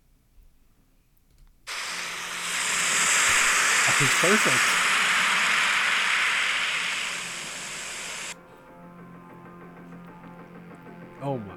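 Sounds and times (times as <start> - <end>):
ocean surf crashing: 1.7 - 8.4
speech: 4.0 - 4.8, 11.3 - 11.5.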